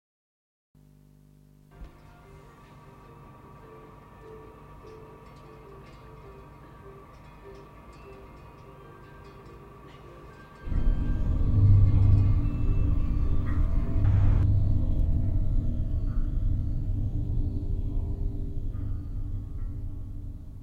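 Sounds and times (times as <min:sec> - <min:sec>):
scanner surface noise: 0:10.6 - 0:20.3.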